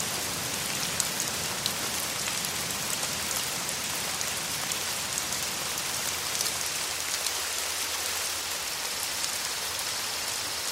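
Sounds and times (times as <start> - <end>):
warm rain drumming on a roof: 0.0 - 10.7.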